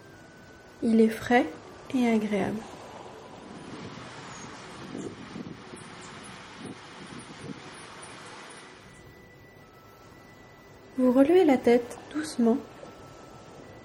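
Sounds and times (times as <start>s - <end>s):
wash of surf: 0.0s - 13.8s
speech: 0.8s - 2.8s, 11.1s - 12.7s
steady breathy wind rushing: 1.5s - 9.2s.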